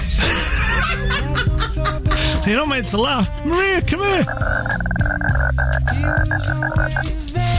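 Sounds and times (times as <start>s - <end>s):
laughter: 0.1s - 2.5s
speech: 2.5s - 7.5s
voice imitating frog croaking with a buzzy throaty tone: 4.2s - 7.1s.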